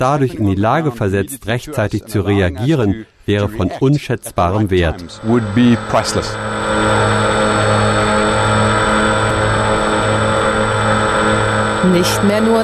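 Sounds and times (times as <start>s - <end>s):
speech: 0.0s - 7.1s, 11.8s - 12.6s
drone rotors buzzing: 4.8s - 12.6s.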